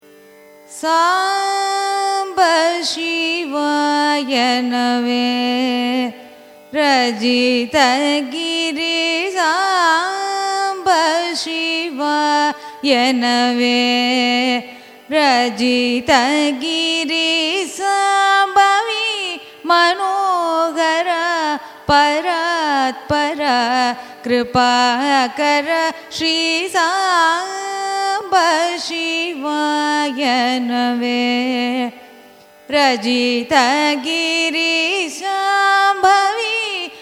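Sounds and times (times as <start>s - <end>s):
carnatic raga music: 0.0s - 36.9s.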